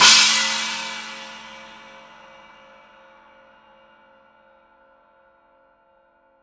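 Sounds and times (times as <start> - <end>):
heavy china cymbal struck on the edge: 0.0 - 2.2.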